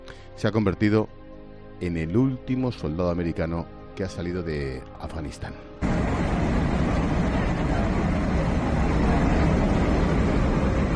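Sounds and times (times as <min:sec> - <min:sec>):
speech: 0:00.4 - 0:01.2, 0:01.8 - 0:05.9
C-17 military transport plane taking off from Kabul airport: 0:05.8 - 0:10.9.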